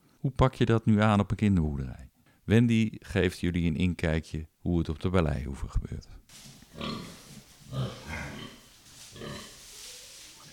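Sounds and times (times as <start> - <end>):
speech: 0.2 - 7.0
barn noise in a stable: 6.6 - 10.5
farm animal grunting in a stable: 6.8 - 8.6.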